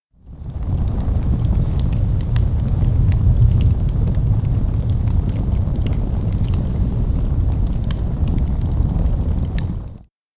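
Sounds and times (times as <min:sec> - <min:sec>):
forest fire burning: 0:00.2 - 0:10.1.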